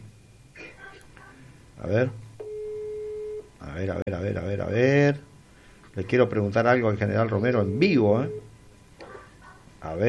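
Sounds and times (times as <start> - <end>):
speech: 1.8 - 2.2, 3.7 - 5.3, 6.0 - 8.5, 9.8 - 10.0
telephone ringback tone while placing a call: 2.4 - 3.4, 7.7 - 8.5.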